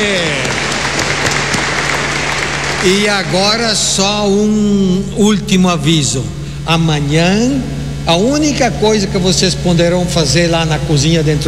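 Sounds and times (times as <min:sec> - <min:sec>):
audience applause from a gathering: 0:00.0 - 0:03.7
speech: 0:02.8 - 0:11.4.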